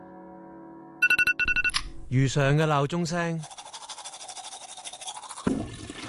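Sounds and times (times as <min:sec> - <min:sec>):
speech: 0:02.1 - 0:03.6
toothbrush scrubbing teeth during a morning wash-up routine: 0:03.1 - 0:06.0.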